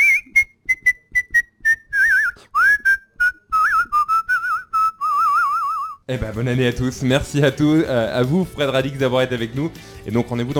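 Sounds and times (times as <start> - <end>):
person whistling a short lively tune: 0.0 - 6.0
speech: 6.1 - 10.5.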